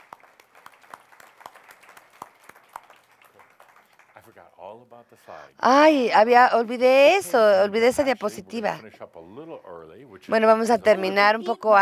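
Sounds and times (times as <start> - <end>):
quiet sparse applause at the close of a presentation: 0.0 - 4.5
speech: 4.2 - 11.8.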